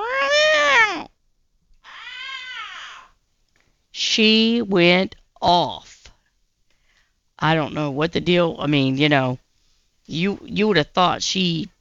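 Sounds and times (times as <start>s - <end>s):
cat yowling in a carrier: 0.0s - 1.1s, 1.8s - 3.1s
speech: 4.2s - 6.0s, 7.4s - 9.4s, 10.1s - 11.7s.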